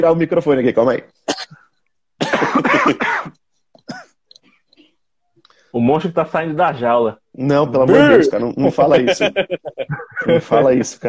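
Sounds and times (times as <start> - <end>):
speech: 0.0 - 1.2, 2.5 - 3.4, 5.7 - 11.0
harsh coughing fit: 1.3 - 1.6, 2.2 - 4.2
laughter: 7.9 - 11.0.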